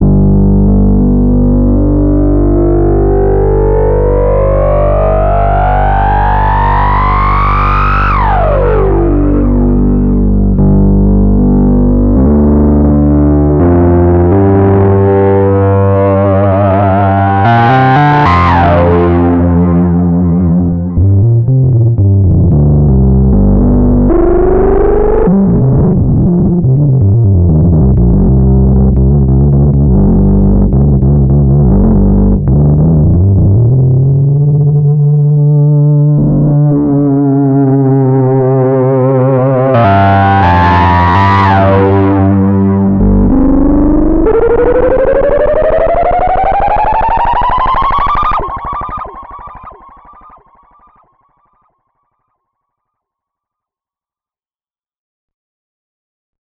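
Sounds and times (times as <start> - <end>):
psychedelic feedback: 0.0 - 51.6.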